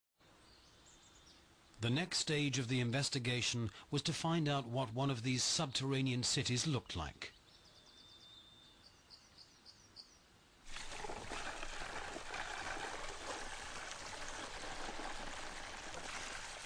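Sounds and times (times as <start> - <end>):
speech: 1.8 - 7.4
liquid cement pouring down tubes: 10.7 - 16.6.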